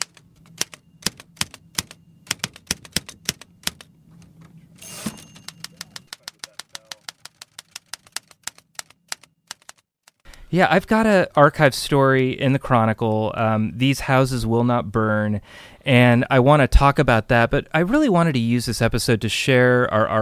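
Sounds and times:
manual typewriter typing: 0.0 - 3.9, 4.8 - 10.4
speech: 10.5 - 20.1.

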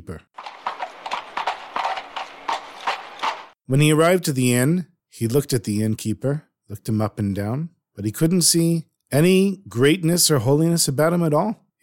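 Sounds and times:
speech: 0.0 - 0.4, 3.7 - 11.8
horse hooves clip-clopping: 0.4 - 3.6.

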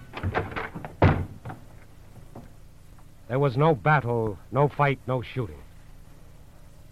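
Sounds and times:
dull thumps forcing open a bedroom door: 0.2 - 1.6
speech: 3.3 - 5.6.

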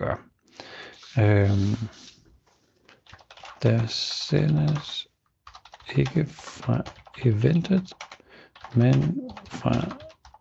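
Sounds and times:
speech: 1.2 - 2.2, 3.6 - 5.1, 5.9 - 10.0
light computer keyboard clicks: 3.0 - 10.3.

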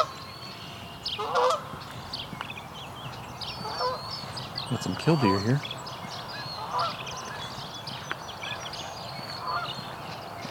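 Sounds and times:
dawn chorus of smaller birds chirping and trilling: 0.0 - 10.4
Canada goose honking: 1.2 - 1.7, 3.6 - 4.0, 6.6 - 7.0, 9.4 - 9.7
speech: 1.2 - 1.7, 4.7 - 5.8.

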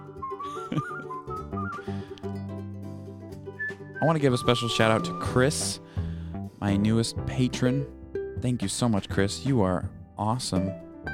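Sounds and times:
person whistling a tune: 0.0 - 2.2, 3.6 - 5.9
music with sustained low tones: 0.0 - 11.1
speech: 4.0 - 5.8, 6.6 - 10.8.

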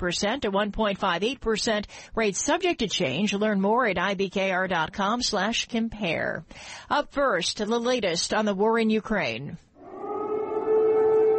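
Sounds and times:
speech: 0.0 - 9.6
air raid siren wailing in Kyiv during invasion: 9.8 - 11.3.

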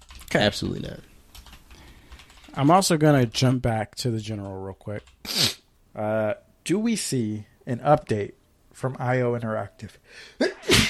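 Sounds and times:
speech: 0.3 - 1.1, 2.6 - 10.8
person sneezing: 5.3 - 5.6, 10.4 - 10.8.

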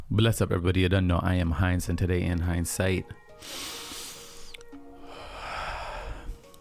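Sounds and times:
speech: 0.1 - 3.8
deep calming breath: 3.4 - 6.6.

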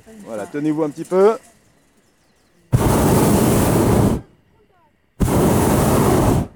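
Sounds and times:
speech: 0.1 - 1.5
hot air balloon burner roaring blasts: 2.7 - 4.4, 5.2 - 6.5.

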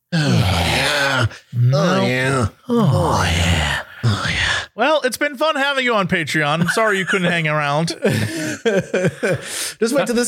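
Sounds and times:
exaggerated heavy breathing and grunting: 0.0 - 4.8, 8.0 - 9.8
speech: 5.1 - 10.2
laughter: 6.6 - 10.2.

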